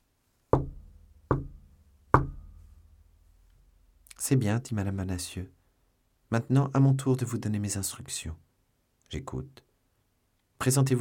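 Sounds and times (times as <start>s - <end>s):
knocks on a door: 0.6s - 2.5s
speech: 4.2s - 5.6s, 6.3s - 8.5s, 9.1s - 9.7s, 10.6s - 10.9s.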